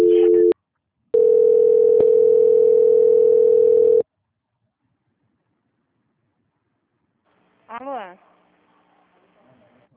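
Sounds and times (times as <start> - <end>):
telephone dial tone after a dropped call during transfer: 1.2 - 4.0.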